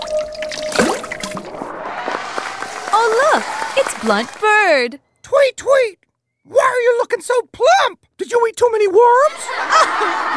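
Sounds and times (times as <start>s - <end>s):
bubbly liquid splashes: 0.0s - 1.8s
magical muck water trickling and gurgling: 0.0s - 1.8s
speech: 3.4s - 10.3s
laughter: 9.2s - 10.3s.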